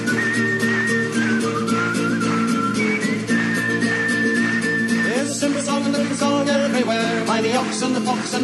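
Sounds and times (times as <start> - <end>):
person whistling a melody: 0.0 - 6.7
continuous musical backing with sustained low tones: 0.0 - 8.4
speech: 6.8 - 8.4.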